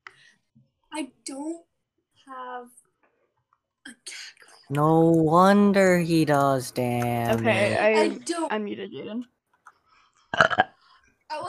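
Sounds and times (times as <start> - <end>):
speech: 0.9 - 1.7, 2.3 - 2.8, 4.1 - 9.3, 10.3 - 10.7
burp: 10.3 - 10.8.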